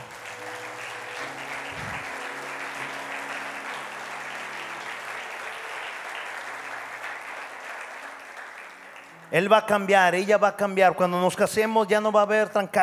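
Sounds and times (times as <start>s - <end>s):
audience applauding with many hands clapping: 0.0s - 9.4s
speech: 9.3s - 12.8s.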